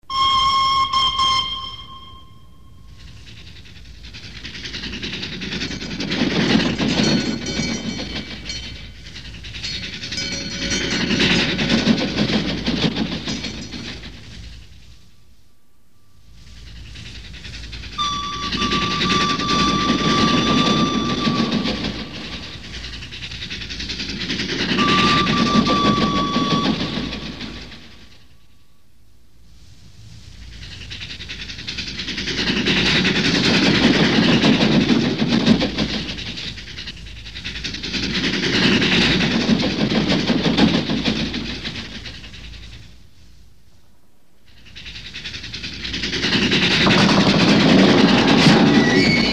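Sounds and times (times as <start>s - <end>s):
train: 0.0s - 49.3s.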